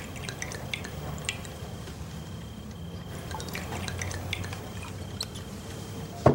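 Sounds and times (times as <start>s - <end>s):
cognac trickling and dripping into small shot glasses: 0.0s - 2.0s, 2.7s - 5.5s.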